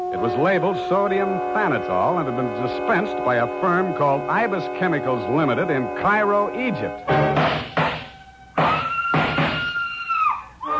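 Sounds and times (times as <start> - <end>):
speech: 0.1 - 7.3
high frenzied scream: 8.0 - 10.7.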